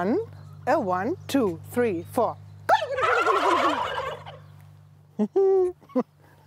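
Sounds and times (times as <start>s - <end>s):
speech: 0.0s - 2.4s, 5.2s - 6.2s
male turkeys gobbling: 2.7s - 4.5s.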